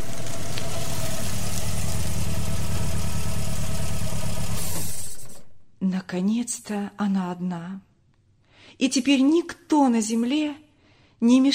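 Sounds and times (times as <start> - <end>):
car engine idling on a dirt country road at night: 0.0 - 5.6
speech: 6.1 - 7.9, 8.8 - 10.6, 11.2 - 11.5.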